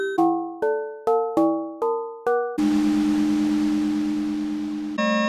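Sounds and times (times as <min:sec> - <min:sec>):
synth percussion: 0:00.2 - 0:05.2.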